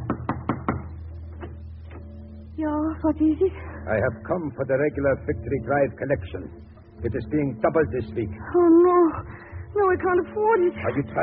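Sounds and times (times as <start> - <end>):
knocking on the front door of a home in Berlin: 0.0 - 1.6
speech: 2.6 - 11.2.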